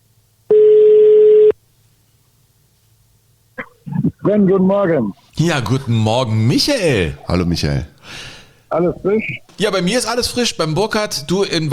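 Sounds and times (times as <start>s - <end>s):
quiet hiss: 0.0s - 11.7s
mobile phone call ringing tone beep: 0.5s - 1.6s
speech: 4.2s - 11.7s.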